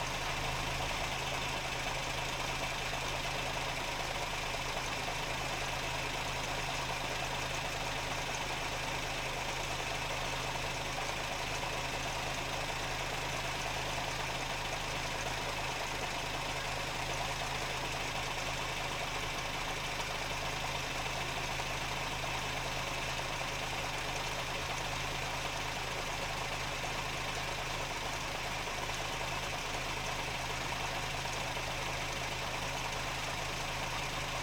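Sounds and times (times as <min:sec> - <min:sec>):
old truck engine idling underneath the engine bay near exhaust: 0:00.0 - 0:34.4.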